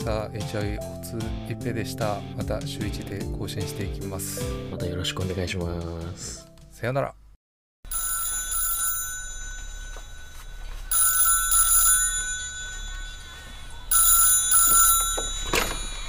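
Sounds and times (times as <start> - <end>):
speech: 0.0 - 7.2
telephone ringing for an incoming call: 7.9 - 16.0.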